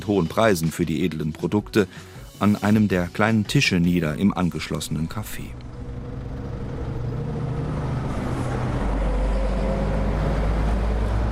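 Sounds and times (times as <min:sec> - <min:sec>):
speech: 0:00.0 - 0:05.7
dense city traffic rumbling at a large roundabout by the town hall: 0:04.5 - 0:11.2
heavy vehicle passing: 0:04.7 - 0:11.2.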